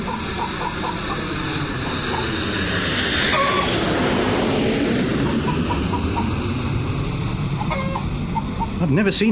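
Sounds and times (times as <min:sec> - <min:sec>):
chicken clucking: 0:00.0 - 0:02.3, 0:05.2 - 0:06.4, 0:07.6 - 0:08.7
jet-propelled chicken roaring past like a jet aircraft: 0:00.0 - 0:09.3.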